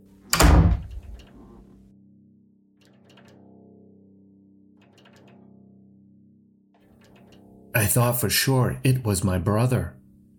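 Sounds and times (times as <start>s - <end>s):
door slamming shut hard: 0.3s - 1.6s
speech: 7.8s - 10.3s.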